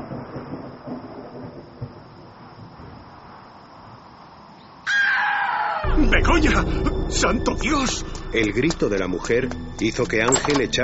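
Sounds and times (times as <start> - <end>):
distant thunder rumbling before a storm: 0.0 - 3.4, 5.8 - 10.8
faint rain before a storm: 0.0 - 10.8
steady wind before a storm: 0.0 - 10.8
harsh crow-like caw: 4.9 - 5.9
speech: 6.1 - 10.8.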